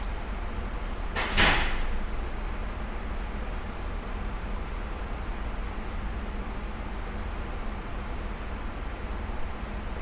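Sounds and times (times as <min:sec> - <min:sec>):
ventilation hiss and low rumble: 0:00.0 - 0:10.0
heavy archive door closing: 0:01.1 - 0:02.0.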